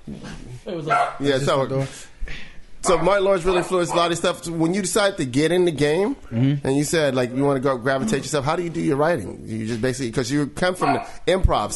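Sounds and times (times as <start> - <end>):
speech: 0.1 - 2.1, 2.8 - 11.7
dog barking excitedly: 0.9 - 1.2, 2.8 - 4.2, 10.8 - 11.2.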